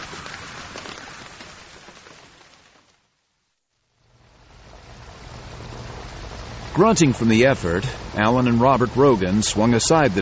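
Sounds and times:
hard heavy cold rain in a thunderstorm: 0:00.0 - 0:10.2
speech: 0:06.8 - 0:10.2.

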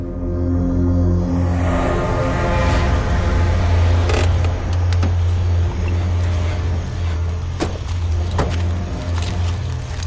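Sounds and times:
car engine droning while being driven hard: 0:00.0 - 0:10.0
road noise: 0:00.0 - 0:10.0.

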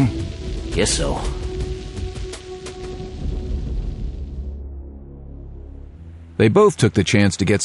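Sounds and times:
heavy rain: 0:00.0 - 0:04.6
thunder rumble: 0:00.0 - 0:04.7
speech: 0:00.8 - 0:01.4, 0:06.4 - 0:07.6.

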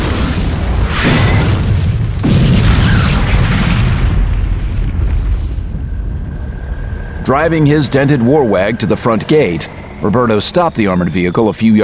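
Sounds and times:
salvo of missiles exploding on smoking pile of wreckage: 0:00.0 - 0:06.2
speech: 0:07.3 - 0:11.8.

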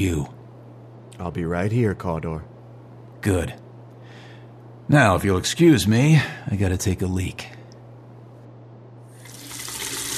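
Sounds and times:
speech: 0:00.0 - 0:00.4, 0:01.2 - 0:02.5, 0:03.2 - 0:03.6, 0:04.9 - 0:07.6
tap water running into a bathroom basin during hand washing: 0:09.2 - 0:10.1.

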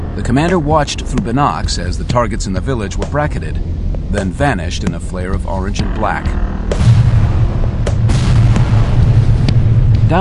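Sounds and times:
barrage of deep booming blasts: 0:00.0 - 0:10.2
speech: 0:00.2 - 0:06.8.

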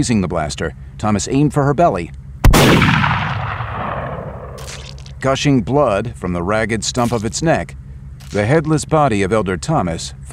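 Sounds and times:
speech: 0:00.0 - 0:03.2, 0:05.2 - 0:10.3
pistol gunshot discharging as it tumbles over paving stones: 0:02.4 - 0:05.1.

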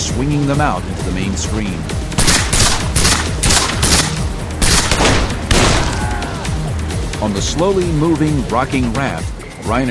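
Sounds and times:
speech: 0:00.2 - 0:02.0, 0:07.2 - 0:09.8
many firearms firing at close range at people on a river raft: 0:02.2 - 0:06.0.

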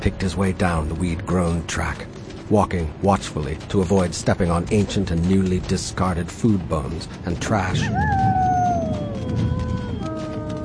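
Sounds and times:
speech: 0:00.0 - 0:08.5
distant wolf howling from a mountain glen: 0:07.6 - 0:10.6.

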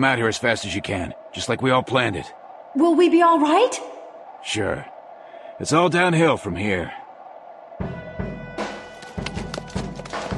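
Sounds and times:
speech: 0:00.0 - 0:04.9, 0:05.6 - 0:07.0
horses' hooves clip-clopping pulling a wagon: 0:08.9 - 0:10.3.

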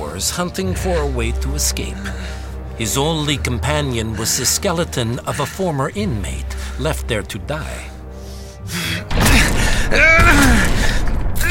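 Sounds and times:
speech: 0:00.2 - 0:07.9, 0:09.9 - 0:11.0
person groaning and gasping while straining against an iron door: 0:08.6 - 0:11.4.

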